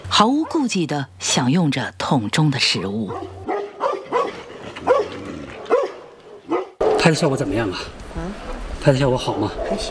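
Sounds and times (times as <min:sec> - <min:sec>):
speech: 0:00.2 - 0:03.4, 0:07.0 - 0:09.9
dogs barking at a Tibetan brown bear: 0:00.3 - 0:00.8, 0:03.1 - 0:07.3, 0:09.2 - 0:09.9.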